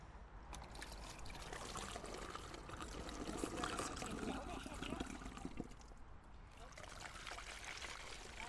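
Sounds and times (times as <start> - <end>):
water pouring into a bottle rocket: 0.5 - 8.4.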